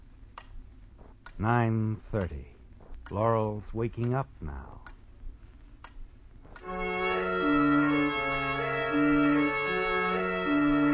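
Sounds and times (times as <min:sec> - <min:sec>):
low steady hum: 0:00.0 - 0:10.9
clock ticking softly: 0:01.2 - 0:02.4, 0:03.0 - 0:05.0
speech: 0:01.4 - 0:04.8.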